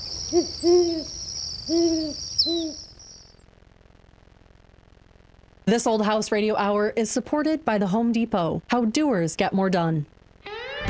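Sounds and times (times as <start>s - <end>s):
horned owl hooting: 0.0s - 3.3s
steady high insect trill: 0.0s - 3.4s
speech: 0.3s - 2.6s, 5.7s - 10.2s.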